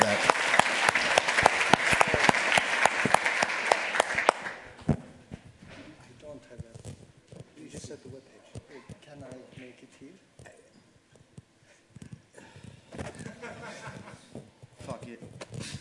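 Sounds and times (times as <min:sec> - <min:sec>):
audience applause: 0:00.0 - 0:04.6
room noise: 0:00.0 - 0:15.7
laughter: 0:13.0 - 0:14.4.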